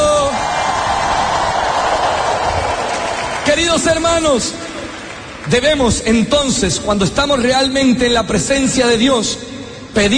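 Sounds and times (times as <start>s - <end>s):
audience shouting and cheering for joy: 0.0s - 6.0s
speech: 3.6s - 4.7s, 5.5s - 10.1s.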